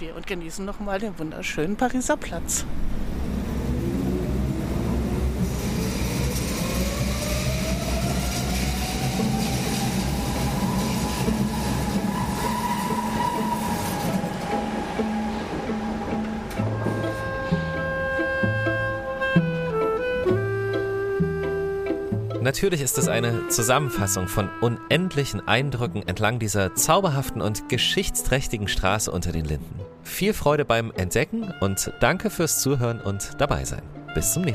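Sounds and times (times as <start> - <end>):
speech: 0.0 - 3.0, 22.5 - 34.5
underground subway train rumbling: 0.0 - 28.5
subway train electric motor whine: 4.1 - 13.0.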